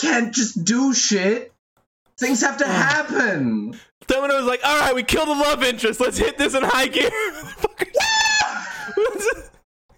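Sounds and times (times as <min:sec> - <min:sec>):
speech: 0:00.0 - 0:01.5, 0:02.2 - 0:08.2
person screaming imitating a panicked character: 0:07.9 - 0:08.7.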